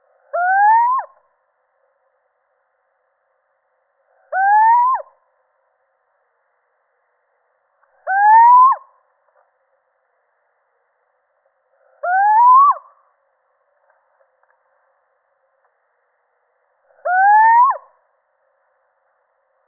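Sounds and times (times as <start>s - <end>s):
male little owl giving rising hoots: 0.3s - 1.2s, 4.2s - 5.2s, 8.0s - 9.0s, 11.8s - 13.1s, 16.9s - 18.0s.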